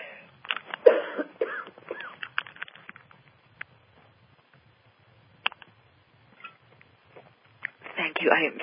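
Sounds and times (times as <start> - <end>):
harsh coughing and wheezing: 0.8 - 2.3
speech: 8.2 - 8.6.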